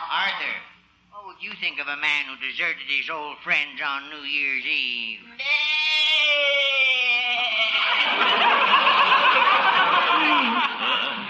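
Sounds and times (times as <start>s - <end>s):
speech: 0.1s - 6.7s
goat bleating: 5.4s - 7.8s
laughter: 7.2s - 11.2s.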